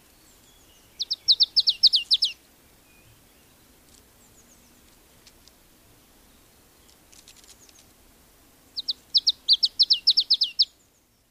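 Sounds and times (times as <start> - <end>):
marsh tit calling: 0.4 - 2.4, 8.8 - 10.8.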